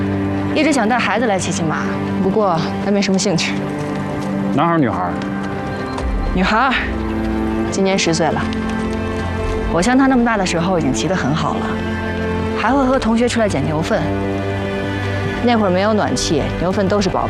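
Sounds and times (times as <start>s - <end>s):
ridden horse's hooves clip-clopping: 0.0s - 17.2s
people talking: 0.5s - 3.6s, 4.6s - 5.2s, 6.3s - 6.9s, 7.7s - 8.6s, 9.7s - 11.8s, 12.6s - 14.1s, 15.4s - 17.2s.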